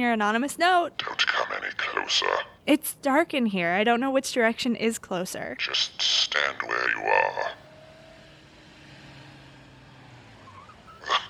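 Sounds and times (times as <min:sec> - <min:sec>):
speech: 0:00.0 - 0:07.6
car engine rumbling in a parking garage after dark: 0:05.6 - 0:11.2
car tires squealing: 0:06.1 - 0:11.2.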